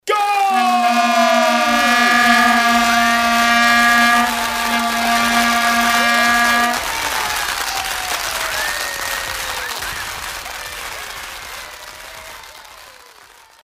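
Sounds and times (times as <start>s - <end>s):
people shouting at a goal: 0.0s - 8.7s
vuvuzelas blowing: 0.3s - 7.6s.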